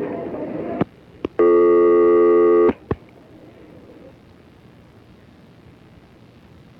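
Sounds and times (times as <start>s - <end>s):
telephone tone while dialing up a hotline: 1.4s - 2.8s.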